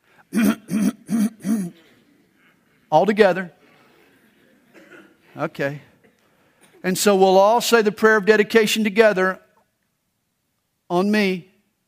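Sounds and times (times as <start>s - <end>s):
speech: 0.3s - 0.6s, 2.9s - 3.6s, 5.4s - 5.9s, 6.8s - 9.4s, 10.9s - 11.5s
people clearing their throats at a Passover seder: 0.3s - 2.1s, 4.6s - 5.4s.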